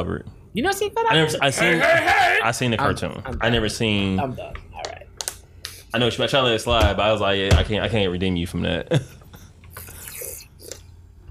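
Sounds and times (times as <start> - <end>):
speech: 0.0 - 4.9, 5.9 - 9.2
person slurping sips of water: 9.7 - 11.0.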